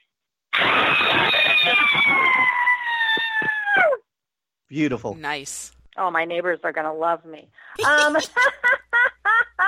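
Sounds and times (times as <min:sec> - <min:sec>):
woman screaming loudly: 0:00.6 - 0:04.1
speech: 0:04.7 - 0:08.8.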